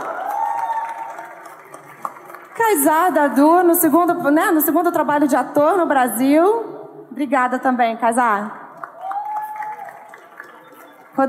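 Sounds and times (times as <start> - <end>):
audience applause: 0.0 - 3.2, 8.8 - 11.2
speech: 2.7 - 8.6.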